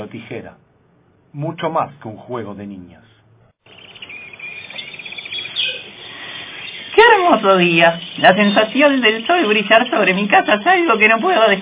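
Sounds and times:
speech: 0:01.3 - 0:03.1, 0:07.3 - 0:11.6
small birds chirping in a sunny garden beside a house: 0:03.6 - 0:11.6.

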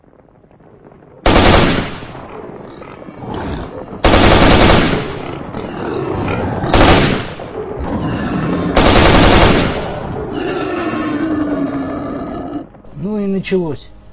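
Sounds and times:
continuous rough roaring din: 0:00.6 - 0:12.9
automatic rifle fire: 0:01.3 - 0:02.2, 0:04.0 - 0:05.2, 0:06.7 - 0:07.4, 0:08.8 - 0:10.0
speech: 0:13.4 - 0:14.0.

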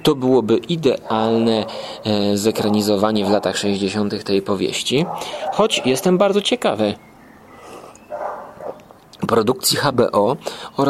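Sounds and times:
speech: 0:00.0 - 0:07.1, 0:09.3 - 0:10.8
faint hum: 0:00.0 - 0:10.8
dog barks outdoors from a veranda: 0:01.0 - 0:04.0, 0:04.8 - 0:06.2, 0:08.1 - 0:08.8.

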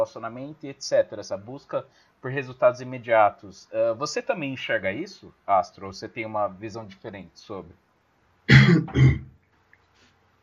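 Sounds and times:
speech: 0:00.0 - 0:07.8, 0:08.5 - 0:09.2
man coughing mid-conversation: 0:08.5 - 0:09.4.

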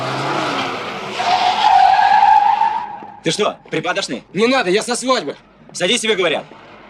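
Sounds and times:
tires squealing as a reversing car skids while chasing someone: 0:00.0 - 0:04.0
speech: 0:03.2 - 0:06.6.

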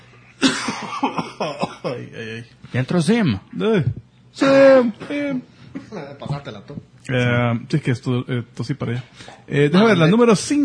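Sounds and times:
person coughing: 0:00.4 - 0:02.1, 0:05.0 - 0:06.2
speech: 0:00.8 - 0:10.6.

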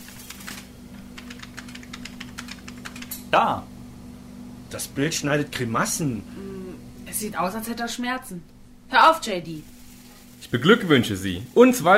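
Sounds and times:
fast typing on a computer keyboard: 0:00.0 - 0:03.2
low steady hum: 0:00.0 - 0:11.9
speech: 0:03.3 - 0:03.7, 0:04.7 - 0:06.5, 0:07.2 - 0:09.7, 0:10.4 - 0:11.9.

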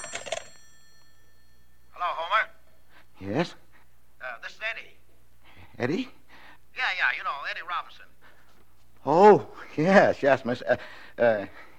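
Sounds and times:
telephone bell ringing: 0:00.0 - 0:02.8
speech: 0:03.2 - 0:03.6, 0:05.8 - 0:06.2, 0:06.9 - 0:08.2, 0:09.0 - 0:11.6.

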